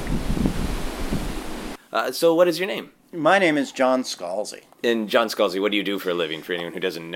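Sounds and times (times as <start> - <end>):
gusty wind buffeting the microphone: 0.0 - 1.8
ocean waves: 0.0 - 1.8
speech: 2.0 - 7.1.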